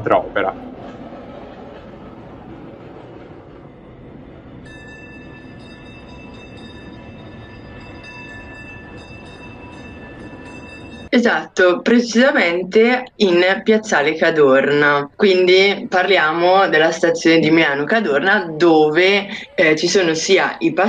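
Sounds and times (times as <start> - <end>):
speech: 0.0 - 0.7, 11.2 - 20.8
tram rumbling along rails: 0.0 - 20.8.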